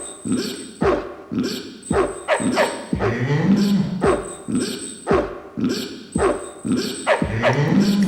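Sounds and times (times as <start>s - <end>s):
speech: 0.2s - 0.6s, 1.3s - 1.7s
dog barking: 0.4s - 5.4s, 6.2s - 7.9s.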